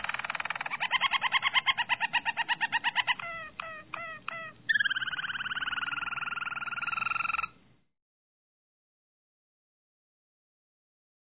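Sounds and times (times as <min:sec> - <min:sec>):
Harz Roller canary fast evenly pulsed rolling trill: 0:00.0 - 0:07.6.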